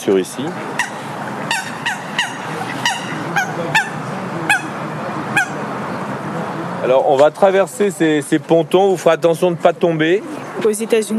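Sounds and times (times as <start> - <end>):
speech: 0.0 - 0.9, 6.8 - 11.1
moorhen calling: 0.0 - 6.1.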